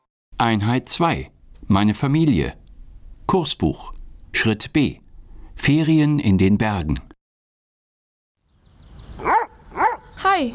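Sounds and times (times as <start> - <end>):
speech: 0.4 - 2.6, 3.3 - 5.0, 5.6 - 7.1, 10.3 - 10.5
low rumble: 1.2 - 5.7
dog barking: 9.2 - 10.5.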